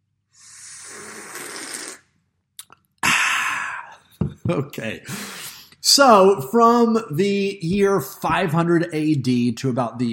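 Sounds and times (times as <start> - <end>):
breathy exhale: 0.4 - 1.6, 3.0 - 4.0
person slurping hot coffee: 0.4 - 2.8
swallowing clicks: 2.6 - 3.0
speech: 4.5 - 10.1.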